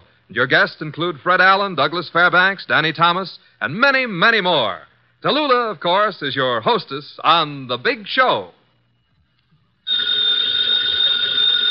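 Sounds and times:
speech: 0:00.3 - 0:08.6
telephone bell ringing: 0:09.9 - 0:11.7.

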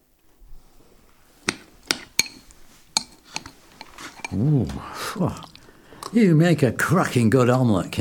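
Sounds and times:
metal cutlery clinking against plates while serving omelette: 0:01.5 - 0:04.4
speech: 0:04.3 - 0:05.5, 0:06.1 - 0:07.9.

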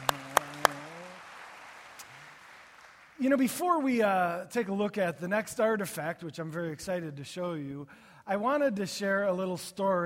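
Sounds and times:
church audience on Father's Day clapping in unison: 0:00.0 - 0:04.1
speech: 0:03.2 - 0:10.0.

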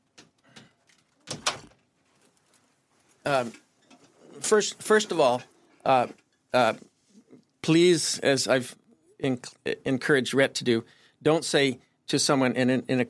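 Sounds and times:
door pushed shut with latching thud: 0:01.2 - 0:01.8
speech: 0:03.3 - 0:03.6, 0:04.4 - 0:06.9, 0:07.7 - 0:13.0.

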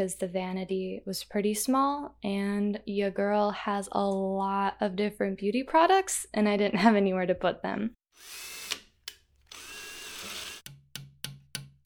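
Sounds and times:
speech: 0:00.0 - 0:08.5
power drill whirring: 0:08.1 - 0:10.6.

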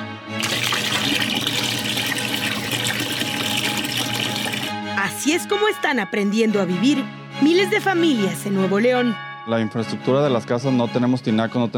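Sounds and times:
water gushing from a tap into containers in a home in Nuevo León: 0:00.4 - 0:04.8
speech: 0:05.2 - 0:11.7.

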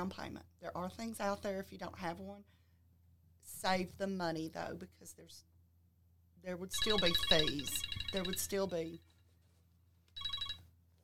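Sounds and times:
speech: 0:00.0 - 0:02.6, 0:03.4 - 0:05.5, 0:06.4 - 0:09.1
low steady hum: 0:00.0 - 0:11.0
rapid high-pitched electronic beeping: 0:06.8 - 0:08.6.

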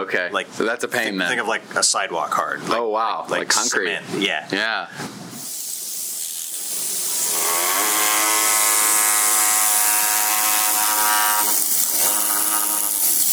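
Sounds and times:
speech: 0:00.0 - 0:05.3
oscillating power chisel cutting hard sandstone: 0:05.3 - 0:13.3.

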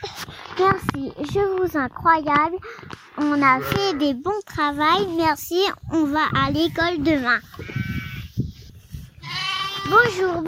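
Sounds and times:
speech: 0:00.6 - 0:07.8, 0:09.9 - 0:10.4
sheep bleating among ewes: 0:03.2 - 0:04.2, 0:07.5 - 0:08.3, 0:09.2 - 0:10.1.

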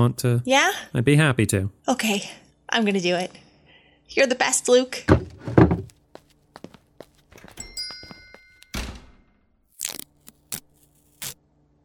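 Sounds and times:
speech: 0:00.0 - 0:03.4, 0:04.1 - 0:05.6
heavy thunk: 0:05.1 - 0:05.9
soft footsteps: 0:05.1 - 0:08.7
door opening: 0:07.3 - 0:09.3
brief bright chime of a door bell: 0:07.6 - 0:09.3.

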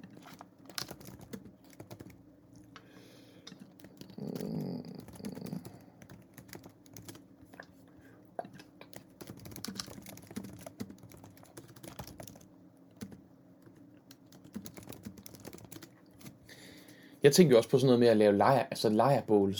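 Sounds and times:
typing on a computer keyboard: 0:00.0 - 0:02.2, 0:03.5 - 0:07.6, 0:08.8 - 0:16.4
speech: 0:17.2 - 0:19.5.

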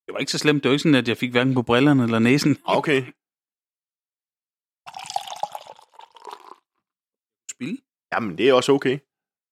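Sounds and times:
speech: 0:00.2 - 0:03.2, 0:07.6 - 0:09.1
dark black liquid pouring into a container: 0:04.9 - 0:06.7.

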